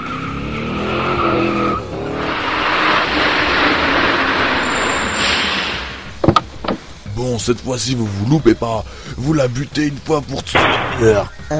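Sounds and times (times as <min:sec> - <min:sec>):
truck tires skidding: 0:00.0 - 0:07.0
truck engine whining: 0:00.0 - 0:07.2
sharp knocks: 0:06.2 - 0:06.9, 0:10.6 - 0:11.2
speech: 0:07.3 - 0:11.5.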